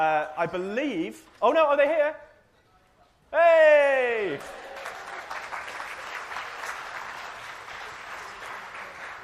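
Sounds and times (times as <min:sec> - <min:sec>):
speech: 0:00.0 - 0:02.3, 0:03.3 - 0:04.8
audience applause: 0:04.3 - 0:09.2.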